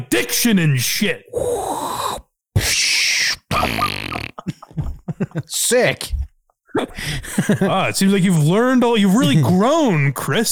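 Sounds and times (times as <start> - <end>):
speech: 0.0 - 1.5, 2.6 - 3.0, 5.3 - 6.2, 6.8 - 10.5
person blowing buzzy raspberries with the mouth imitating farts: 1.3 - 4.4
laughter: 4.2 - 5.5, 7.0 - 8.0.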